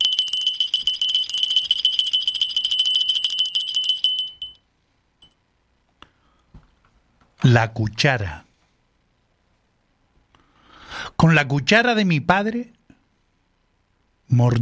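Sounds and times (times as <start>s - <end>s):
small high-pitched bell ringing rapidly: 0.0s - 4.6s
speech: 7.5s - 8.4s, 11.2s - 12.8s, 14.4s - 14.6s.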